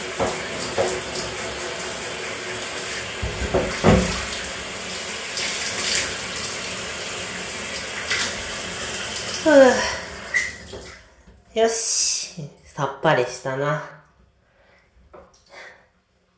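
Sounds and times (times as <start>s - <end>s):
running tap water rinsing soap off a body: 0.0s - 11.4s
speech: 11.6s - 12.0s, 12.8s - 14.0s.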